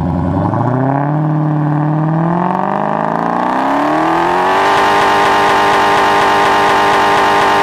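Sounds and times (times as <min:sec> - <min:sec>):
Challenger Hellcat engine revving: 0:00.0 - 0:07.6.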